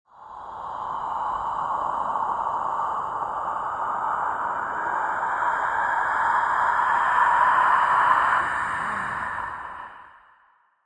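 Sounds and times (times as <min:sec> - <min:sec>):
man-made ghastly creepy wind sound with processing: 0:00.1 - 0:10.8.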